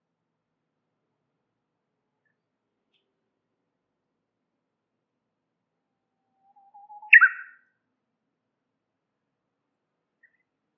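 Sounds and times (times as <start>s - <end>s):
warbler singing low whistles and chirpy descending notes: 6.5s - 7.6s.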